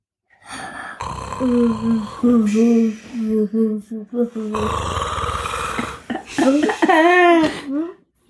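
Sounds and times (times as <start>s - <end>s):
person imitating a small sleeping monster snoring: 0.4s - 6.7s
exaggerated moaning sing-song vocal sounds: 0.5s - 7.9s
speech: 1.4s - 5.1s, 6.4s - 8.0s.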